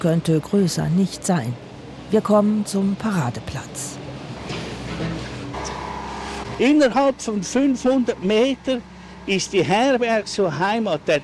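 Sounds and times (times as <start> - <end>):
speech: 0.0 - 4.0, 6.6 - 11.2
road noise: 0.0 - 11.2
Porsche sports car driving past: 4.4 - 6.9.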